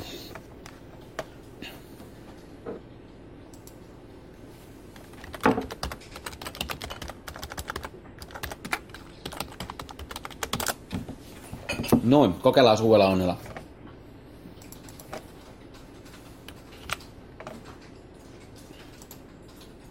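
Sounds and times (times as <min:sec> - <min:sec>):
low hum: 0:00.0 - 0:19.9
typing on a computer keyboard: 0:05.0 - 0:10.8, 0:14.6 - 0:17.9
speech: 0:12.1 - 0:13.5.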